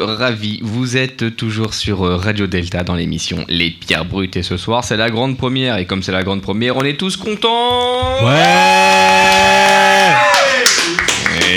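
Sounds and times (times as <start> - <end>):
speech: 0.0 - 9.6
loud handclaps overloading the microphone with clipped distortion: 7.7 - 11.5.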